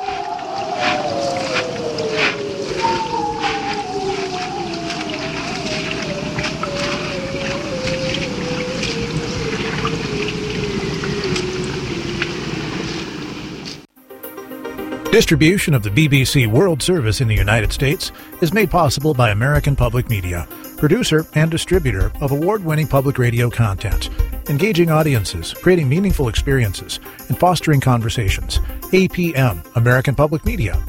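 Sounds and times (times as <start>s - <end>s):
bearded seal underwater calls: 0.0s - 12.9s
speech: 15.2s - 30.8s.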